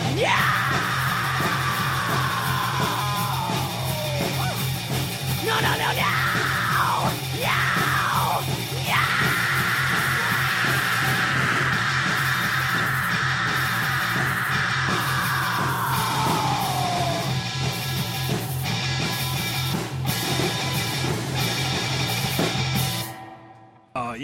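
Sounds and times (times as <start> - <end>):
person screaming: 0.0 - 4.7, 5.4 - 17.4
pounding distorted rock music: 0.0 - 24.2.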